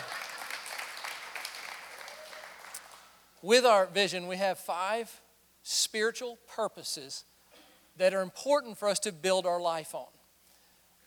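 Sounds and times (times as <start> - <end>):
church congregation clapping: 0.0 - 3.2
speech: 3.4 - 7.3, 8.0 - 10.2.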